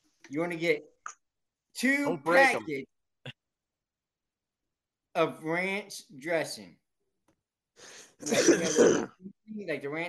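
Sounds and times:
speech: 0.3s - 1.2s, 1.8s - 2.9s, 5.2s - 6.8s, 7.8s - 10.0s
rough throat-clearing cough: 8.2s - 9.2s.

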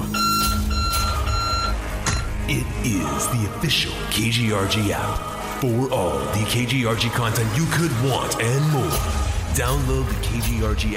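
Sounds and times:
loud electronic alarm clock tone beeping: 0.0s - 2.4s
speech: 2.5s - 10.9s.

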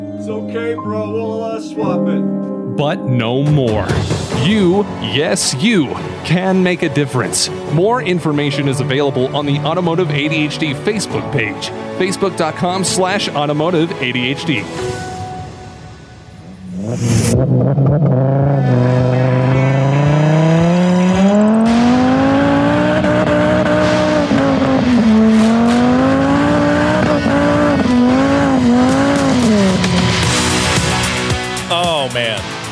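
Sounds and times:
speech: 0.2s - 15.0s, 17.0s - 19.4s
five-cylinder Rabbit car revving at a rallycross event: 16.5s - 31.6s.

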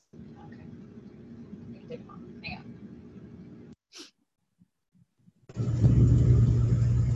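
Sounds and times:
parked car engine idling: 5.6s - 7.1s.

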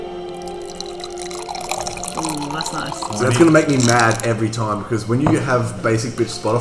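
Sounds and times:
liquid pouring into container beside the microphone: 0.0s - 4.8s
speech: 2.2s - 6.5s.

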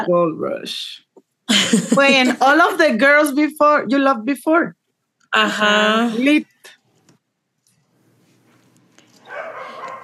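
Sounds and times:
speech: 0.0s - 6.5s
laughter: 1.5s - 2.8s
several dogs barking: 9.2s - 10.0s.

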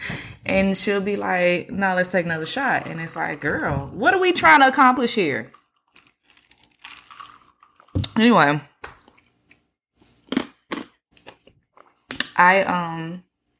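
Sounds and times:
speech: 0.5s - 5.6s, 8.2s - 8.7s, 12.4s - 13.2s
person chewing and crunching ice: 5.5s - 8.0s, 10.2s - 12.2s.

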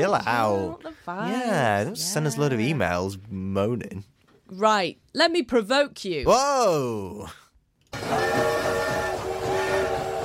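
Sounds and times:
speech: 0.0s - 8.8s
loud train whistle blasts: 8.0s - 10.2s.

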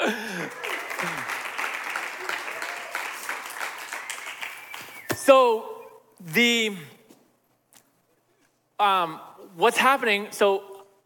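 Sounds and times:
large crowd applauding: 0.0s - 5.1s
speech: 5.3s - 6.9s, 8.8s - 11.0s.

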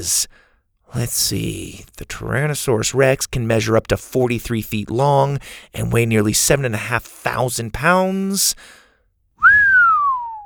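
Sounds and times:
speech: 0.0s - 8.8s
person whistling: 9.4s - 10.4s.

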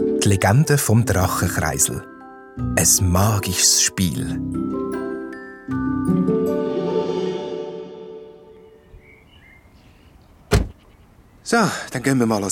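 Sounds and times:
speech: 0.0s - 5.0s, 11.5s - 12.5s
musical tones ringing: 0.0s - 9.3s
car door slamming as a man gets out of the car: 10.5s - 10.8s.

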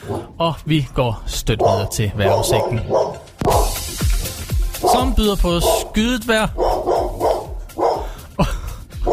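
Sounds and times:
dog barking: 0.0s - 0.3s, 1.5s - 3.8s, 4.8s - 6.0s, 6.6s - 8.2s
speech: 0.0s - 3.2s, 4.9s - 6.7s
laughter: 8.2s - 8.9s.

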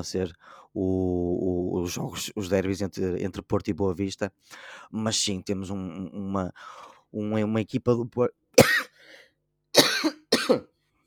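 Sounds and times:
speech: 0.0s - 8.9s, 9.7s - 10.7s
person coughing: 8.6s - 9.0s, 9.8s - 10.7s.

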